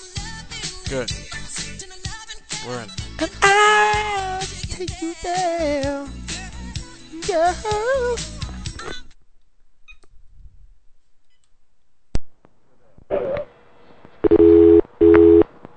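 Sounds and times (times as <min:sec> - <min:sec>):
music: 0:00.0 - 0:09.2
speech: 0:00.9 - 0:01.9, 0:02.6 - 0:06.2, 0:07.2 - 0:09.0
telephone ringback tone of short steady electronic buzzes: 0:14.3 - 0:15.4.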